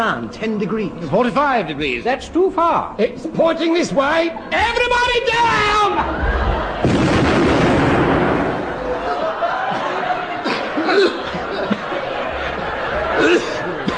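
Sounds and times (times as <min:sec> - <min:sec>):
speech: 0:00.0 - 0:07.6
people laughing: 0:04.2 - 0:07.7, 0:08.3 - 0:13.9
loud gun blast: 0:06.8 - 0:08.9.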